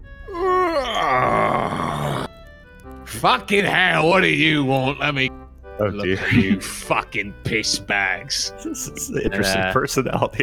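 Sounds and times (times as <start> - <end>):
voice imitating a big yawn from a carved gargoyle face: 0.3 - 2.4
speech: 3.2 - 10.4
laughter: 6.0 - 7.9.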